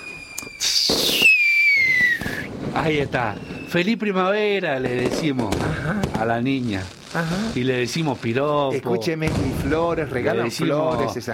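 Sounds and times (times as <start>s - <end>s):
shrill whistling tone sliding downward: 0.0s - 2.5s, 3.2s - 3.9s
firecrackers crackling and popping: 0.0s - 11.3s
speech: 2.8s - 11.3s.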